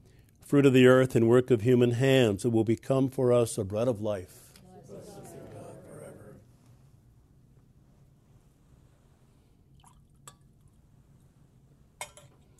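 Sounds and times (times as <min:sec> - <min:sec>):
speech: 0:00.5 - 0:04.4
small drips of water poured into wine in a chalice during Mass: 0:09.7 - 0:10.8.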